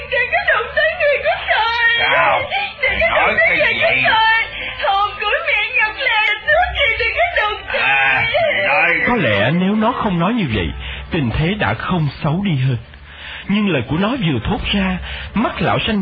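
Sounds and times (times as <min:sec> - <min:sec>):
laughter: 0:00.0 - 0:09.5
boy whimpering and crying out in sobbing wails: 0:01.9 - 0:04.8
speech: 0:09.5 - 0:16.0.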